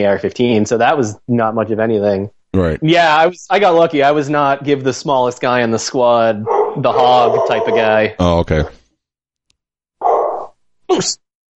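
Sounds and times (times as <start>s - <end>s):
speech: 0.0s - 8.8s, 10.9s - 11.2s
dog barking: 6.4s - 8.0s, 10.0s - 10.6s.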